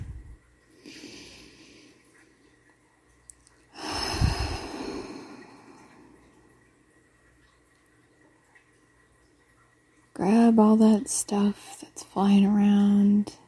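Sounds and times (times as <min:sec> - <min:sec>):
deep breath in and out: 0:03.7 - 0:06.1
speech: 0:10.2 - 0:13.4.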